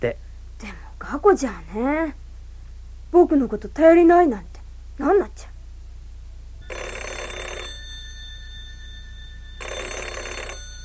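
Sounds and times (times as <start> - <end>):
speech: 0.0 - 2.2, 3.1 - 5.5
low steady hum: 0.0 - 10.8
telephone bell ringing: 6.6 - 10.8.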